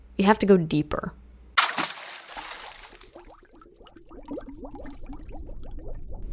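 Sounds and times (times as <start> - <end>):
speech: 0.2 - 1.2
weighted lead line splashing into river: 1.6 - 3.6
river water bubbling and gurgling: 2.3 - 6.3.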